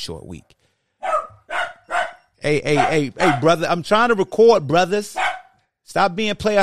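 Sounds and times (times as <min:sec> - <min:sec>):
speech: 0:00.0 - 0:00.6, 0:02.4 - 0:05.3, 0:05.9 - 0:06.6
dogs barking: 0:01.0 - 0:03.8, 0:05.1 - 0:05.6.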